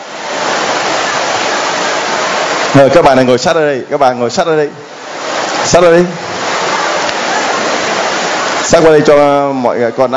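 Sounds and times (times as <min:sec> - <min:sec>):
heavy rain pouring down: 0:00.0 - 0:10.1
speech: 0:02.8 - 0:04.8, 0:05.6 - 0:06.2, 0:08.7 - 0:10.1.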